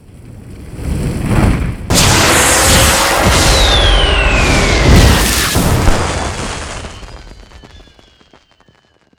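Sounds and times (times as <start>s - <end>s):
dragon firework: 0.8s - 9.1s.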